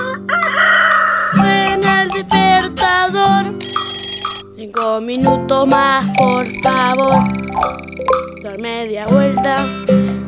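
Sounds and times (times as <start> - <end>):
rooster crowing: 0.0 - 1.4
steady musical backing: 1.4 - 10.2
speech: 4.7 - 9.9.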